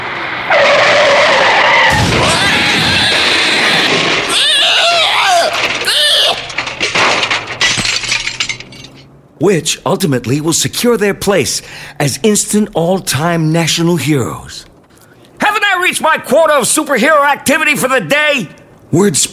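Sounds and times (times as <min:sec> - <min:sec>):
car tire screech on a dirt road: 0:00.0 - 0:06.8
car crash striking an animal: 0:00.0 - 0:09.1
debris clattering and scraping: 0:02.0 - 0:09.1
speech: 0:09.4 - 0:14.7, 0:15.9 - 0:19.3.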